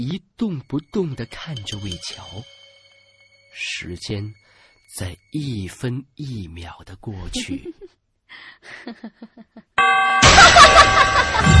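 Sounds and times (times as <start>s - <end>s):
speech: 0.0s - 2.6s, 3.6s - 11.5s
clock chime striking midnight: 0.5s - 5.8s, 9.8s - 11.5s
woman laughing loudly and frantically: 7.4s - 7.9s, 8.6s - 11.5s.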